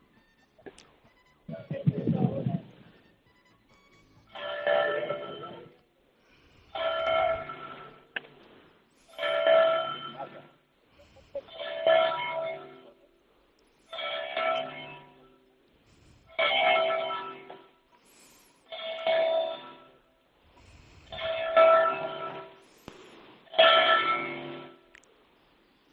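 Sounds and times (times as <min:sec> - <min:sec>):
large cathedral clock bell tolling: 0:04.2 - 0:05.8, 0:06.7 - 0:08.2, 0:09.0 - 0:10.6, 0:11.5 - 0:13.0, 0:13.9 - 0:15.4, 0:16.3 - 0:20.1, 0:21.2 - 0:22.8, 0:23.5 - 0:24.8.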